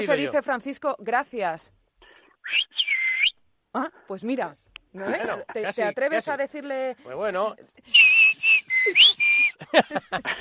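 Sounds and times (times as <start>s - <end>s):
speech: 0.0s - 1.8s, 2.4s - 2.9s, 3.7s - 8.1s, 8.8s - 10.4s
short breathy sharper whistle bursts: 2.4s - 3.4s, 7.9s - 9.6s
whistled speech in a whistled language: 2.5s - 3.3s, 7.9s - 9.5s
laughter: 8.8s - 10.4s.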